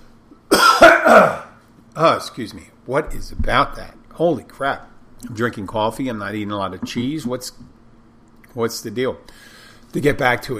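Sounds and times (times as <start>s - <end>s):
person clearing throat: 0.5s - 1.6s
speech: 1.1s - 1.4s, 2.0s - 7.8s, 8.5s - 10.5s.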